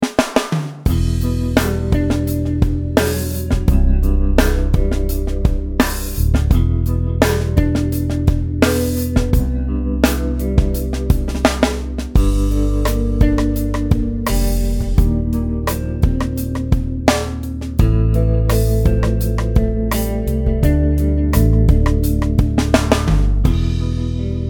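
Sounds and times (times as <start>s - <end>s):
backbeat: 0.0s - 24.4s.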